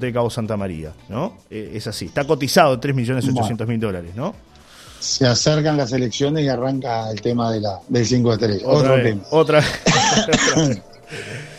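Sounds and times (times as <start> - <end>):
speech: 0.0 - 11.5
laughter: 9.4 - 11.5
person coughing: 9.8 - 11.4
breathy noise: 11.0 - 11.5.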